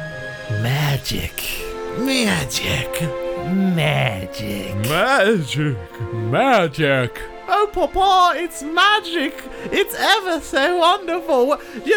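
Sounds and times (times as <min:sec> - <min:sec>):
speech: 0:00.5 - 0:11.9
donkey braying: 0:00.6 - 0:07.2.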